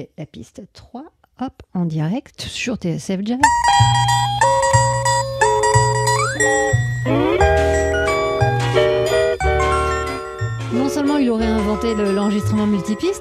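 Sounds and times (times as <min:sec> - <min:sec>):
speech: 0:00.0 - 0:04.1, 0:06.4 - 0:07.3, 0:10.9 - 0:13.2
steady pulsing bass figure: 0:03.7 - 0:10.1
layered distorted electric guitar lines: 0:03.8 - 0:09.6.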